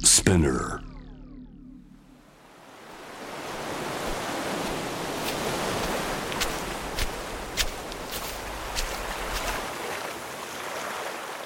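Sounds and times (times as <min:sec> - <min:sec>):
speech: 0:00.1 - 0:00.9
ocean surf breaking onto a beach in Israel: 0:02.4 - 0:11.4.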